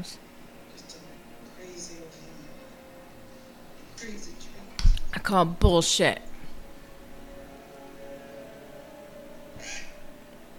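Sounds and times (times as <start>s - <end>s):
speech: 0.0s - 0.3s, 4.0s - 4.5s, 5.2s - 6.3s
steady hiss: 0.0s - 10.5s
crow cawing: 9.6s - 10.0s.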